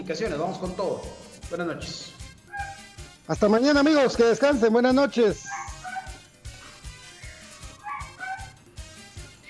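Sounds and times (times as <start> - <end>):
speech: 0.1 - 2.2, 3.3 - 5.6
dog whining and howling: 2.5 - 2.8, 5.5 - 6.2, 7.6 - 8.6.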